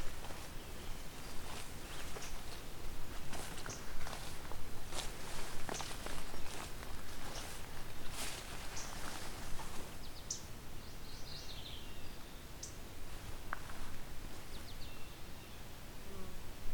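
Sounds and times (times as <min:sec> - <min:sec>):
mourning warbler singing: 0:00.0 - 0:02.6, 0:03.2 - 0:04.3, 0:05.4 - 0:12.8, 0:14.4 - 0:15.7
footsteps crunching through brush: 0:00.0 - 0:10.1, 0:13.0 - 0:14.8.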